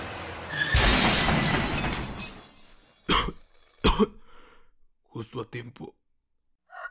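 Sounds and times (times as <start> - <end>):
speeding car crash with heavy impact: 0.5 - 3.0
shattering tinkling glass: 0.5 - 3.1
speech: 5.3 - 6.0.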